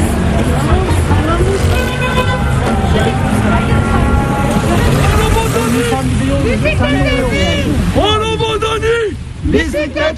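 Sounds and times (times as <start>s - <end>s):
city traffic engines rumbling in Istanbul: 0.0s - 10.1s
voices talking over busy roadway noise: 0.0s - 10.1s
car horns tooting in Istanbul traffic: 1.4s - 8.9s.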